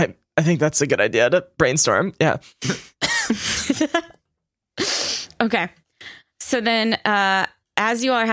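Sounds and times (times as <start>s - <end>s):
speech: 0.0s - 4.2s, 5.4s - 5.8s, 6.5s - 8.3s
light coughing: 2.6s - 3.7s.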